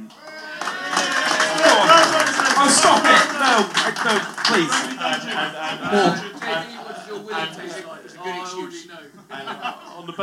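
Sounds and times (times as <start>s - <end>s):
crowd applause: 0.0s - 8.6s
people's voices: 0.0s - 10.2s
laughter: 0.2s - 10.2s
speech: 2.6s - 10.2s.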